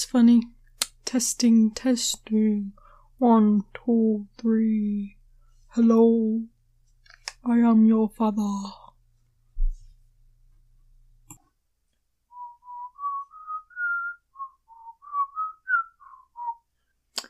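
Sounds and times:
speech: 0.0s - 5.2s, 5.8s - 6.5s, 7.4s - 8.8s
person whistling a tune: 12.3s - 16.7s.

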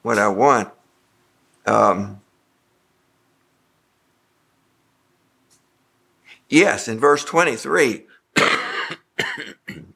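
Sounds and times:
speech: 0.0s - 0.8s, 1.6s - 2.2s, 6.5s - 8.6s, 9.2s - 9.9s
person coughing harshly: 8.4s - 9.9s.

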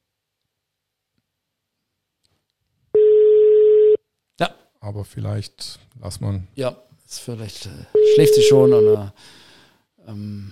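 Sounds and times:
electronic telephone ringback tone during an outgoing call: 3.0s - 4.0s, 8.0s - 9.0s
speech: 4.4s - 10.5s.

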